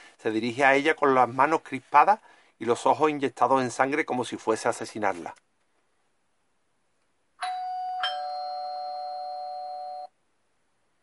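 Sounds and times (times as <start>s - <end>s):
speech: 0.2s - 5.5s
doorbell ding-dong chime: 7.4s - 10.1s.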